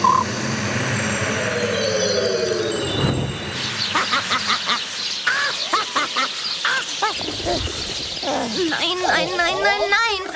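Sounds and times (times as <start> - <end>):
whoosh: 0.0 - 5.4
flock of sparrows chirping: 2.5 - 10.3.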